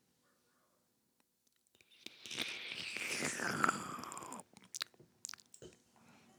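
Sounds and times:
slurping sip of wine: 0:01.8 - 0:05.7
wet mouth clicks: 0:01.8 - 0:05.7
person swallowing: 0:02.1 - 0:05.6.

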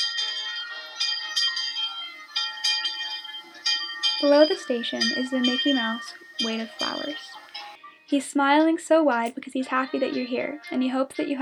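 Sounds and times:
train bell ringing: 0:00.0 - 0:07.4
speech: 0:04.2 - 0:07.4, 0:08.1 - 0:11.4.

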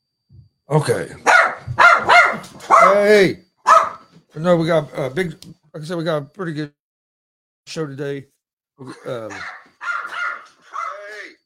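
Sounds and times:
speech: 0:00.7 - 0:01.3, 0:02.4 - 0:03.4, 0:04.4 - 0:06.8, 0:07.7 - 0:09.6
dogs barking: 0:01.2 - 0:03.0, 0:03.6 - 0:04.1, 0:09.3 - 0:11.2.

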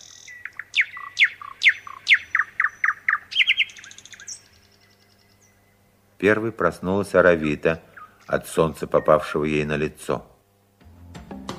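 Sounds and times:
nightingale singing at night: 0:00.0 - 0:06.0, 0:07.3 - 0:09.9
speech: 0:06.2 - 0:10.3.

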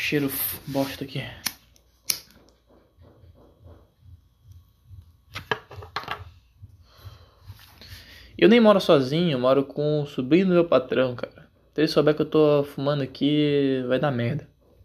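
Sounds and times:
rustling and handling noise: 0:00.0 - 0:04.2, 0:04.9 - 0:06.7, 0:07.3 - 0:08.2
speech: 0:00.1 - 0:01.5, 0:08.4 - 0:14.5
kitchen lighter being clicked: 0:01.4 - 0:02.3.

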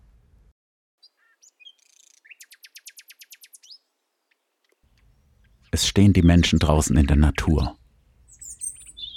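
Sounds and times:
bird trilling: 0:01.0 - 0:03.8, 0:08.3 - 0:09.1
bird singing: 0:01.0 - 0:09.1
speech: 0:05.8 - 0:07.8.

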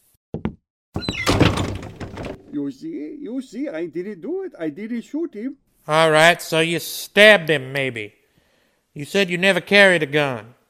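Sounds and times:
wooden door latch thumps: 0:01.0 - 0:02.4
speech: 0:02.6 - 0:08.2, 0:09.0 - 0:10.6.

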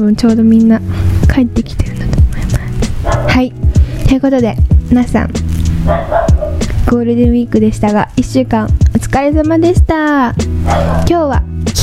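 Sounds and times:
speech: 0:00.0 - 0:02.1, 0:03.2 - 0:06.2, 0:06.8 - 0:11.8
dog barking at home: 0:03.0 - 0:03.4, 0:05.8 - 0:06.7, 0:10.6 - 0:11.2.

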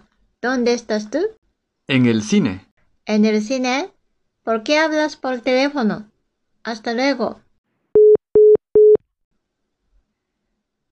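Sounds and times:
speech: 0:00.4 - 0:07.4
phone busy tone beeps after a call is hung up: 0:08.0 - 0:09.0.

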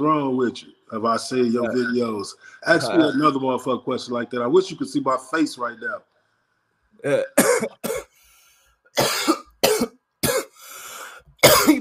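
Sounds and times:
speech: 0:00.0 - 0:06.1, 0:07.0 - 0:08.0
harsh coughing from smoking a blunt: 0:07.1 - 0:08.2, 0:09.0 - 0:10.6, 0:11.4 - 0:11.7.

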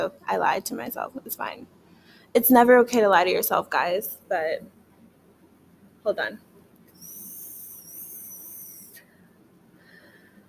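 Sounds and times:
speech: 0:00.0 - 0:04.8, 0:06.0 - 0:07.1
vape pen whistling during a long inhale: 0:07.0 - 0:09.1.

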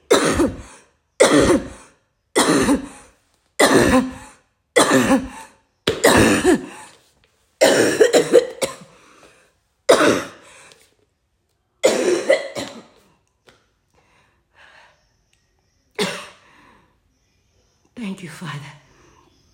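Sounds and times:
raspy throat clearing during a prayer: 0:00.0 - 0:06.9, 0:07.6 - 0:09.0, 0:09.9 - 0:10.5, 0:11.8 - 0:13.1, 0:16.0 - 0:16.4
person coughing during a prayer: 0:00.0 - 0:07.0, 0:07.6 - 0:09.0, 0:09.9 - 0:10.6, 0:11.8 - 0:13.0, 0:16.0 - 0:16.4
speech: 0:03.8 - 0:04.2, 0:04.9 - 0:05.4.

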